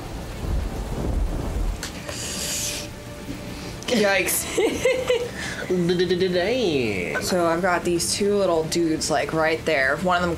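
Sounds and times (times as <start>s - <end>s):
rolling thunder during a storm: 0.0s - 2.0s
steady rain: 0.0s - 10.3s
speech: 3.9s - 10.3s
laughter: 4.2s - 6.5s.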